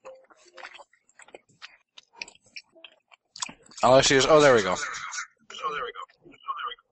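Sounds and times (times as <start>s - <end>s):
loud chewing of chewy Starburst candy: 0.0s - 3.9s
speech: 3.8s - 5.0s
voice echoing through a second speaker in the same room: 3.8s - 6.9s.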